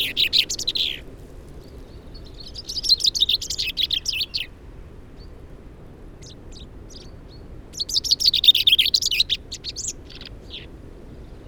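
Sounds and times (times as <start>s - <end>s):
Fringilla coelebs common chaffinch song: 0.0s - 4.6s, 6.2s - 11.4s.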